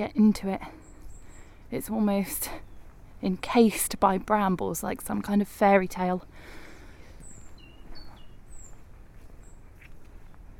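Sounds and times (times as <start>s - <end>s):
speech: 0.0s - 0.8s, 1.7s - 2.6s, 3.2s - 6.6s
robin singing: 0.0s - 10.0s.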